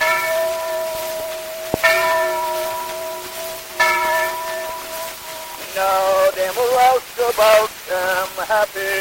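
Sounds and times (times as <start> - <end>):
big boat bell ringing: 0.0 - 6.4
steady hissy noise: 0.0 - 8.9
speech: 7.3 - 8.9.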